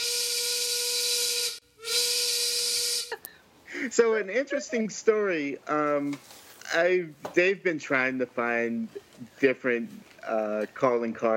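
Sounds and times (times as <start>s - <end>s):
steam train whistle: 0.0s - 3.2s
speech: 3.8s - 11.3s.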